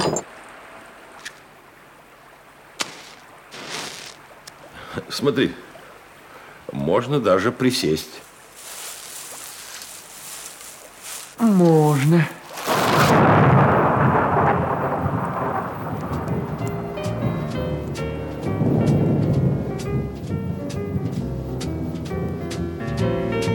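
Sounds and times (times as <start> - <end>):
steady rain pattering and dripping in a thunderstorm: 0.3 - 23.5
speech: 5.0 - 5.7, 6.7 - 8.3, 11.4 - 12.4
deep rolling thunderclap in a thunderstorm: 12.7 - 21.4.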